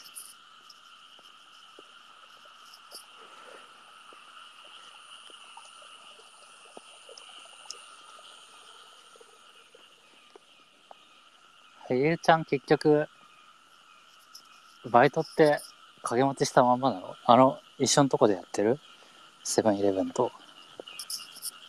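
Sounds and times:
dense chorus of frogs croaking outdoors at night: 0.0 - 21.6
insects trilling outdoors at night: 0.0 - 21.6
speech: 11.9 - 13.1, 14.9 - 20.4.

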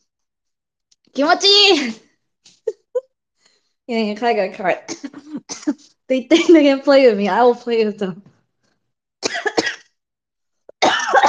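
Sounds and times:
speech: 1.2 - 2.0, 3.9 - 8.3
person coughing with raspy hacks: 9.2 - 9.9, 10.7 - 11.2.

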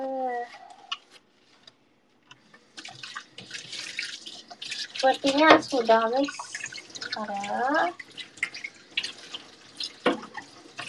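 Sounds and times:
tap water running into a sink at home: 2.6 - 10.8
speech: 5.0 - 6.5, 7.2 - 8.0.

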